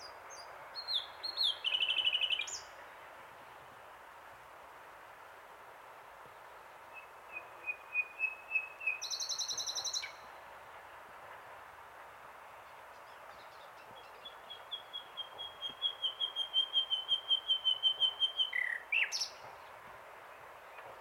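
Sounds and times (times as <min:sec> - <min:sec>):
common nightingale Luscinia megarhynchos singing: 0:00.0 - 0:02.8, 0:06.9 - 0:10.3, 0:12.9 - 0:19.5.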